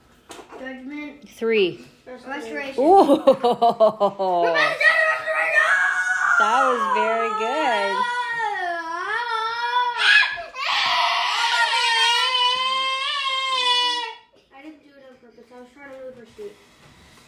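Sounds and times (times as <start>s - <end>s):
speech: 0.6s - 4.9s, 6.4s - 8.1s
laughter: 2.8s - 4.7s
child screaming inside a house: 4.5s - 14.3s.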